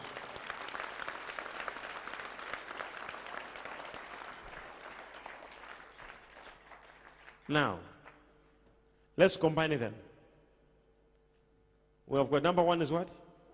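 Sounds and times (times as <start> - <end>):
crowd of people clapping hands: 0.0 - 8.3
speech: 7.5 - 7.9, 9.2 - 10.1, 12.1 - 13.2.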